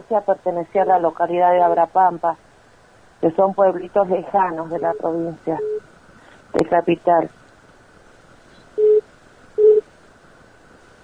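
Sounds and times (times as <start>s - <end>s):
faint hiss: 0.0s - 11.0s
speech: 0.1s - 2.5s, 3.2s - 5.8s, 6.5s - 7.4s
telephone call signal tone beeps: 8.8s - 9.0s, 9.6s - 9.8s.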